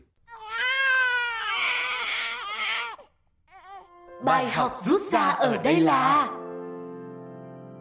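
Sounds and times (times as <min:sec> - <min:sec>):
babies crying loudly: 0:00.3 - 0:03.9
speech: 0:04.2 - 0:06.4.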